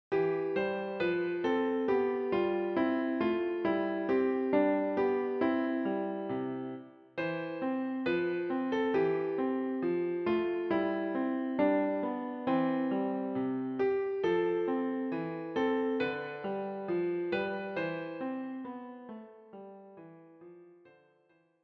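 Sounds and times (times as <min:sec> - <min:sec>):
piano playing a Christmas carol: 0:00.1 - 0:21.3.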